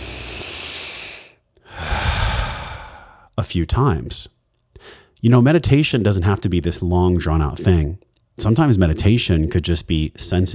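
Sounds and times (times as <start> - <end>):
loud deep human breaths: 0.0 - 3.3, 4.7 - 5.2
speech: 3.4 - 10.5.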